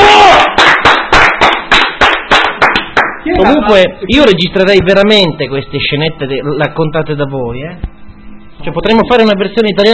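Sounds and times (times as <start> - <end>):
steady rhythmic hand clapping: 0.3 - 3.6
speech: 3.4 - 8.0, 8.6 - 9.9.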